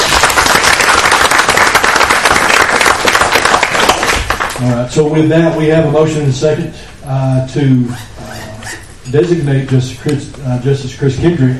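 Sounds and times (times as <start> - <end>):
audience at a county Quorum Court meeting applauding: 0.0 - 4.7
speech: 4.6 - 8.3, 9.1 - 11.5.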